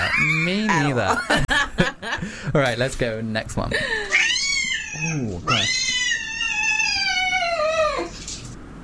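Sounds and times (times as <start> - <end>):
speech: 0.2 - 1.4, 2.5 - 4.2, 5.0 - 6.0
cat yowling: 4.1 - 8.2.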